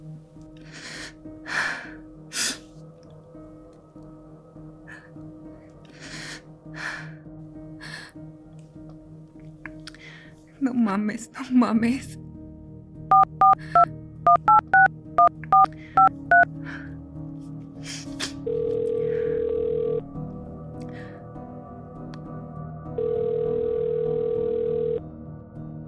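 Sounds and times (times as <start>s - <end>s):
speech: 10.6s - 12.2s
long steady ringing tones of an outgoing phone call: 13.1s - 16.5s, 18.5s - 20.0s, 23.0s - 25.0s
touch-tone beeps of a phone number being dialed to call a cell phone: 13.1s - 16.5s, 18.5s - 20.0s.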